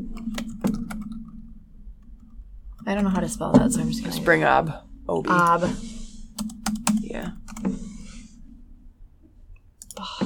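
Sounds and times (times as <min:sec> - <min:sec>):
typing on a computer keyboard: 0:00.0 - 0:01.4, 0:06.4 - 0:07.7, 0:09.8 - 0:10.1
low steady hum: 0:00.0 - 0:10.2
speech: 0:02.9 - 0:05.9, 0:07.2 - 0:07.4.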